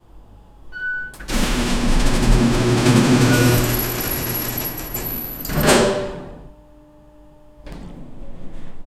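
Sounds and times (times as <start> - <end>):
heavy mechanical lift activating: 1.0 - 6.5.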